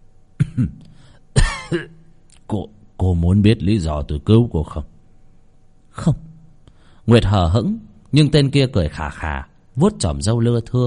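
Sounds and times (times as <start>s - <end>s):
old man coughing harsh raspy double coughs: 0.4s - 2.1s
speech: 0.6s - 0.9s, 1.7s - 4.9s, 6.0s - 6.2s, 7.1s - 10.8s.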